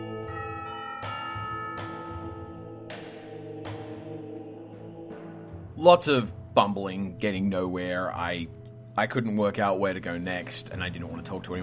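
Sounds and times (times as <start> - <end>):
loud church bell ringing: 0.0 - 4.7
speech: 5.8 - 11.6.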